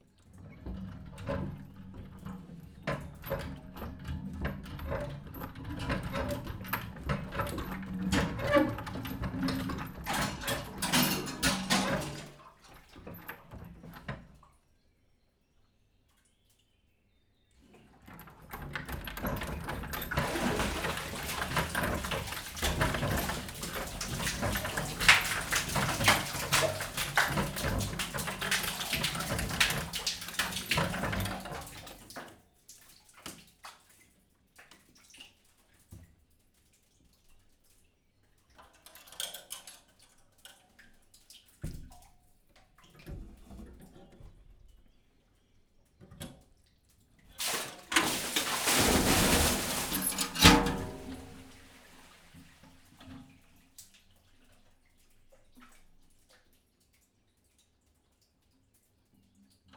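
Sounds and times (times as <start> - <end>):
water slowly drawn from a top-closed wheel well: 0.0 - 15.0, 15.6 - 59.7
water pouring back into a top-closed wheel well: 19.3 - 32.1, 47.4 - 53.3.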